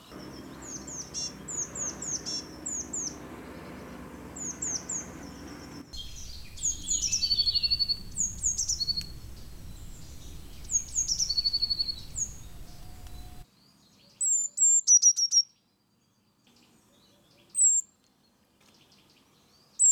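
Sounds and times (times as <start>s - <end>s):
blue tit Cyanistes caeruleus singing: 0.2s - 13.4s.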